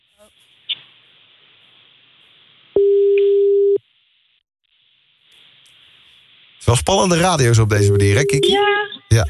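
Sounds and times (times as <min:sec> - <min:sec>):
faint telephone line hiss: 0:00.0 - 0:02.8, 0:03.8 - 0:09.2
telephone line tone during a call placed to a radio show: 0:02.8 - 0:03.8, 0:07.8 - 0:08.6
speech: 0:06.6 - 0:09.2.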